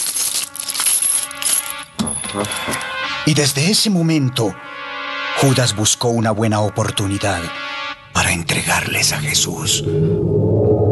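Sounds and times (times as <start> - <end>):
silver coins clinking and jingling together: 0.0 - 3.1
speech: 2.3 - 4.7, 5.4 - 7.6, 8.2 - 10.9.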